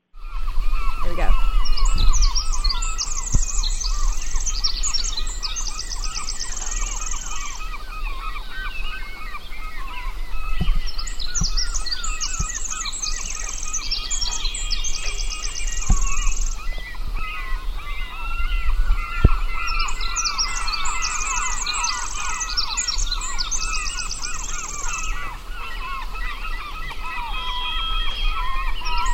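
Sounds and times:
dense chorus of other birds: 0.0 - 29.1
Pacific Wren trilling song: 0.2 - 29.1
geese honking: 0.3 - 29.1.

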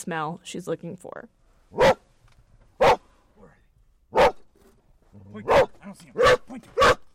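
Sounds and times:
speech: 0.0 - 2.0, 5.2 - 7.0
search dog barking on a snowy gravel obstacle course: 1.7 - 2.0, 2.8 - 3.1, 4.1 - 4.4, 5.4 - 7.1.

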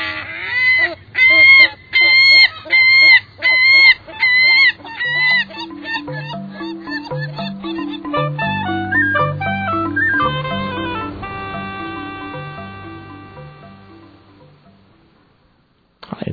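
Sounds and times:
herring gull calling: 0.0 - 15.0
soft music: 5.0 - 15.2.

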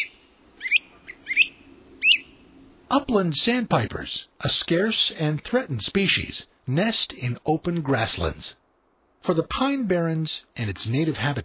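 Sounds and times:
great crested flycatcher calling in New Jersey pine barrens: 0.0 - 2.9
faint low hum: 0.0 - 11.4
speech: 2.9 - 8.6, 9.2 - 11.4.

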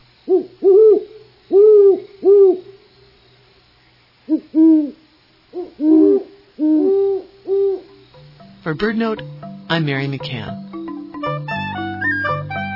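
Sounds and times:
Great horned owl hooting: 0.2 - 3.2, 3.8 - 8.6
speech: 8.7 - 10.6.

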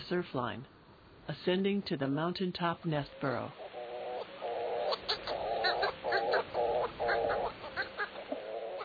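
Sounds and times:
background hiss: 0.0 - 8.8
speech: 0.1 - 3.6
Hawaiian petrel calling at its nest burrow on Haleakala volcano: 3.0 - 8.8.

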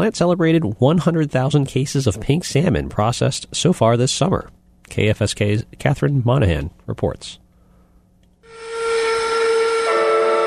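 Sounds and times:
speech: 0.0 - 7.4
fish plant steam whistle blowing: 8.4 - 10.4.

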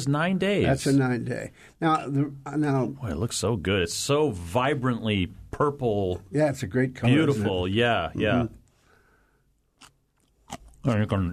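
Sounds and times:
speech: 0.0 - 8.6, 10.8 - 11.3
chewing crunchy red cabbage fermented with salt: 9.7 - 11.3.

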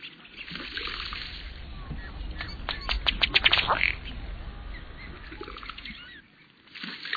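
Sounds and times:
low steady outdoor rumble: 0.2 - 6.2
male ruddy duck feet pattering on water in courtship display: 0.4 - 6.1.

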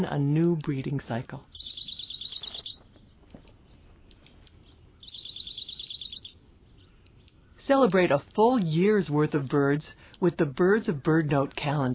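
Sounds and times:
speech: 0.0 - 1.7, 7.7 - 11.9
dark-eyed junco twittering call: 1.5 - 2.8, 5.0 - 6.9.

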